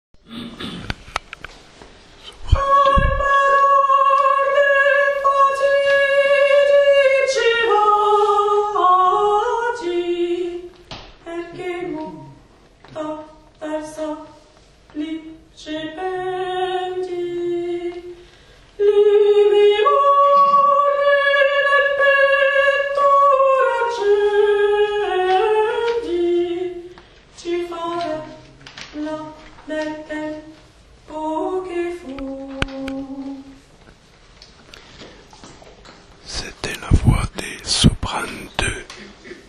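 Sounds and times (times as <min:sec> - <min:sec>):
sopranos singing: 0:02.3 - 0:18.2, 0:18.8 - 0:33.6.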